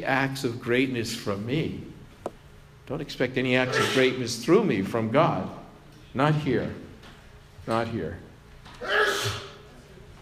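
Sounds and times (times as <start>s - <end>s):
speech: 0.0s - 2.0s, 2.9s - 6.8s, 7.6s - 8.2s
person sneezing: 3.7s - 4.1s, 8.8s - 9.6s.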